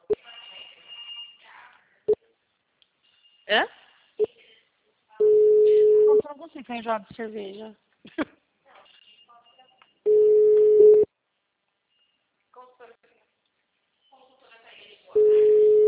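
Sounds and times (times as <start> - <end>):
speech: 3.5 - 4.3, 6.3 - 8.4
telephone ringback tone of an unanswered call: 5.2 - 6.2, 10.1 - 11.1, 15.2 - 15.8.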